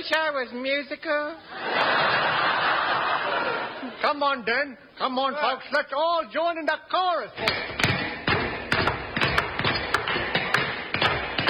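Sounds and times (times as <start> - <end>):
speech: 0.0 - 2.6, 3.4 - 7.8
laughter: 1.4 - 4.0
many hammers pounding nails at once by a studio audience: 7.4 - 11.4.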